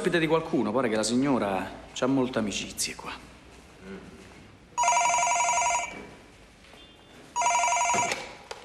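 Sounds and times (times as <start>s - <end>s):
speech: 0.0s - 3.3s
telephone ringing with a bright buzzy trill: 4.8s - 6.0s, 7.4s - 8.4s.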